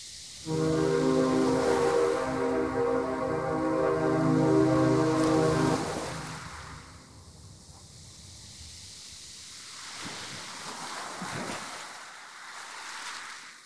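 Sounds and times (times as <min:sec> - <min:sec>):
deep loud foghorn blast: 0:00.5 - 0:07.3.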